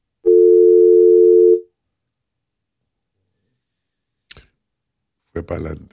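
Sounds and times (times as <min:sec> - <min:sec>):
telephone line tone of an incoming call: 0:00.2 - 0:01.7
speech: 0:05.4 - 0:05.9.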